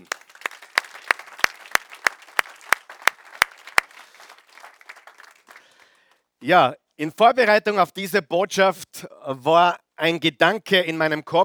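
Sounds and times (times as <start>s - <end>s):
audience applauding: 0.0s - 6.2s
one pair of hands clapping in a steady sharp rhythm: 0.0s - 6.2s
speech: 6.4s - 11.4s.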